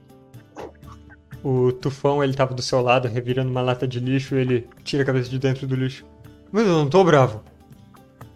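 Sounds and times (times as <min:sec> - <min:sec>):
dog barking: 0:00.5 - 0:00.8
speech: 0:01.4 - 0:07.5.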